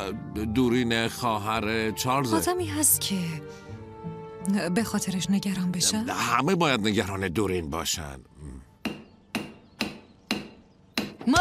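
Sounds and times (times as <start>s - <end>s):
speech: 0.1s - 3.6s, 4.4s - 8.3s, 11.2s - 11.4s
hammer driving nails into a window frame: 8.8s - 11.4s.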